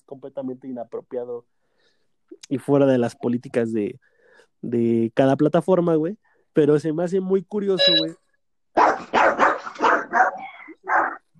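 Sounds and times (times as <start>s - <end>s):
speech: 0.2s - 1.7s, 2.3s - 8.2s
dog barking: 8.8s - 11.3s.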